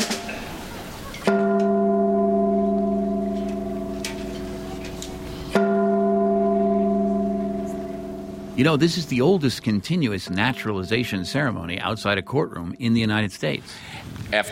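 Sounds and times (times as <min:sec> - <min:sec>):
Chinese gong being struck on a rooftop: 0:01.2 - 0:12.5
speech: 0:08.6 - 0:14.5.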